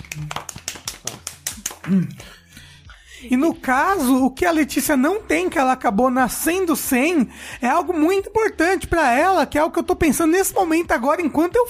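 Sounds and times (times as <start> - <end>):
sharp hand claps: 0.0 - 2.4
speech: 1.9 - 2.4, 3.2 - 11.6.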